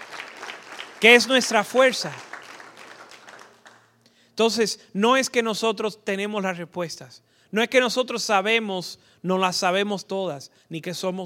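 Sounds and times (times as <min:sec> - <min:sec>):
crowd applauding during a sermon: 0:00.0 - 0:04.0
speech: 0:01.0 - 0:02.3, 0:04.4 - 0:11.2.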